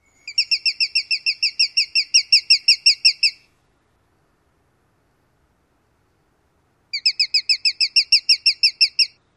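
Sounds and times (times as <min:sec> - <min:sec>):
alarm calls near nest: 0:00.3 - 0:03.4, 0:06.9 - 0:09.2.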